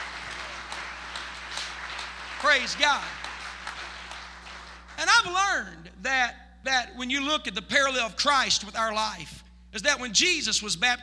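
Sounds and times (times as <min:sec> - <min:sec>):
congregation clapping hands: 0:00.0 - 0:05.5
speech: 0:02.4 - 0:03.2, 0:05.0 - 0:11.0.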